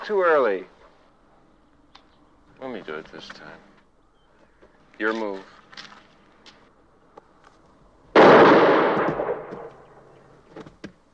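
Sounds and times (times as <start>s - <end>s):
speech: 0.0s - 0.8s, 2.6s - 3.7s, 5.0s - 5.9s
loud gunshot: 8.2s - 9.9s.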